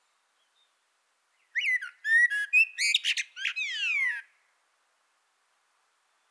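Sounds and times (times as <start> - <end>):
common blackbird Turdus merula song phrase: 0.0 - 4.4.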